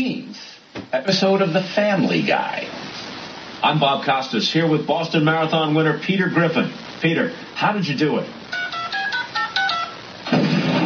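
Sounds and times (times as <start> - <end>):
loud burst of rough static-like noise: 0.0 - 10.8
speech: 0.9 - 2.7, 3.6 - 8.4
telephone keypad dialing beeps: 8.6 - 10.0.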